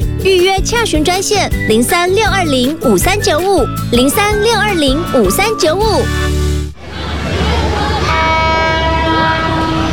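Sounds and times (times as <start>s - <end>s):
speech: 0.2s - 6.4s
train rumbling through a tunnel: 7.1s - 9.9s
train horn: 8.0s - 9.9s.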